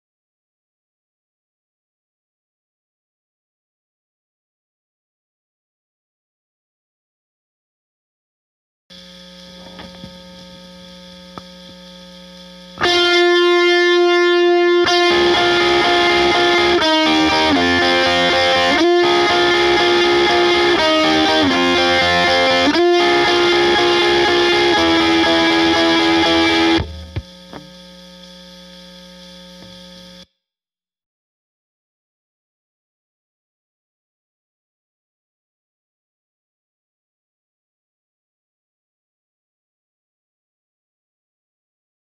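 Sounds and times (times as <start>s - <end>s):
chorus lead synth: 12.7s - 27.8s.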